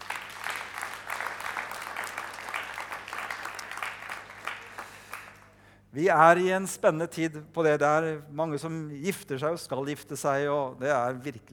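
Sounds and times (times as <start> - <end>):
audience clapping: 0.0 - 5.6
speech: 6.0 - 11.5.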